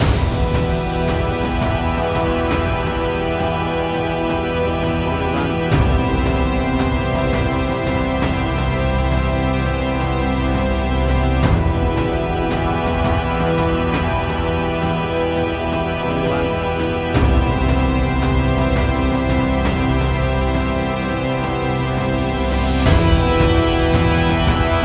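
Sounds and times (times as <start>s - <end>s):
atmospheric warm hybrid action music track: 0.0s - 24.8s.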